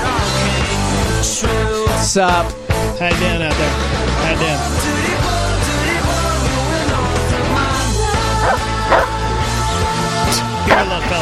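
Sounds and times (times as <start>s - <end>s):
steady musical backing: 0.0s - 11.2s
speech: 2.1s - 5.1s, 10.3s - 11.2s
large dog barking in deep woofs: 8.4s - 9.2s, 10.6s - 11.2s.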